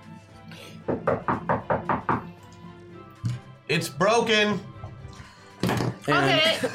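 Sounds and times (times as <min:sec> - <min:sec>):
firm knocks on a wooden door: 0:00.9 - 0:02.3
speech: 0:03.7 - 0:04.7, 0:06.1 - 0:06.7.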